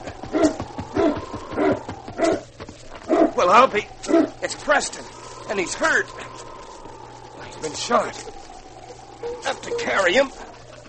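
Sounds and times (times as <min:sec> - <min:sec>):
sled dog team barking: 0:00.0 - 0:04.8, 0:07.8 - 0:10.8
speech: 0:03.4 - 0:06.4, 0:07.6 - 0:08.4, 0:09.2 - 0:10.4.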